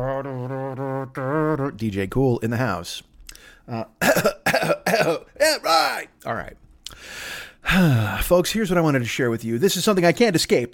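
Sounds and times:
speech: 1.1 - 6.6, 7.7 - 10.7
person clearing throat: 4.0 - 5.4.

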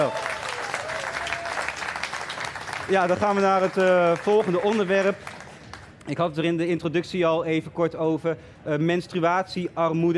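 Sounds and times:
audience applause: 0.0 - 6.0
speech: 2.9 - 5.3, 6.0 - 10.1.

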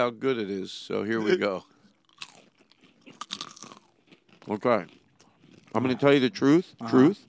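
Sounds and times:
speech: 0.0 - 1.7, 4.4 - 5.0, 5.7 - 7.2
person crunching into a peanut butter snack: 1.6 - 7.2.

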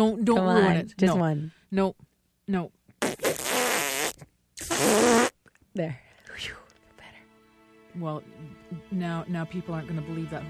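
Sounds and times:
speech: 0.0 - 2.8, 5.8 - 6.6, 8.0 - 10.4
loud buzzy sputtering fart sound effect: 3.0 - 5.4.

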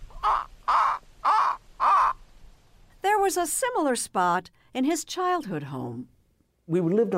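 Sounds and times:
bird cawing near a pond: 0.0 - 2.2
speech: 3.2 - 7.1.

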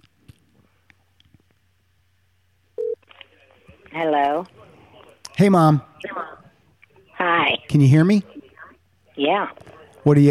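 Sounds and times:
higher telephone tone: 2.8 - 3.0
speech: 3.9 - 4.6, 5.4 - 6.3, 7.2 - 8.3, 9.2 - 10.2.

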